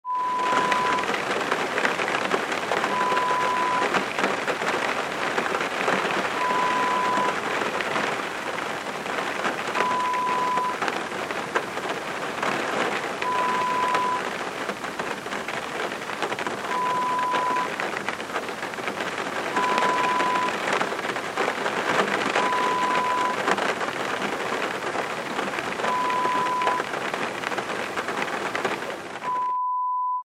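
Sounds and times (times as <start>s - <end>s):
rain on window: 0.1s - 29.5s.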